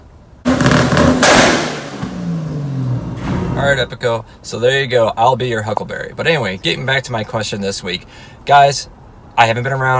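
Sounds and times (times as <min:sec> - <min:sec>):
car exhaust blasts with flames shooting from exhaust: 0:00.4 - 0:04.0
speech: 0:03.6 - 0:09.9.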